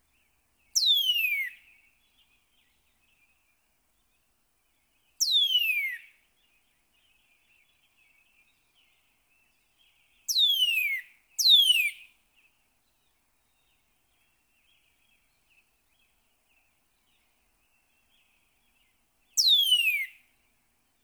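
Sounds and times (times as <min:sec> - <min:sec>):
Northern cardinal singing slurred whistles: 0:00.8 - 0:01.6, 0:05.2 - 0:06.1, 0:10.3 - 0:12.0, 0:19.4 - 0:20.2.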